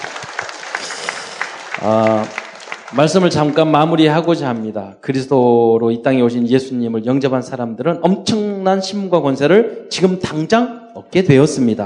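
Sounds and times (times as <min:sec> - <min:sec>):
church audience applauding: 0:00.0 - 0:04.8
speech: 0:01.8 - 0:11.8.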